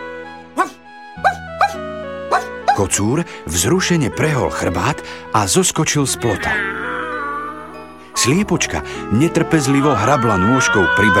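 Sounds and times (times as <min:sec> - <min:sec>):
sustained tonal background: 0:00.0 - 0:11.1
shaggy dog giving short high yipping barks: 0:00.5 - 0:02.8
speech: 0:02.8 - 0:06.9, 0:08.2 - 0:11.1.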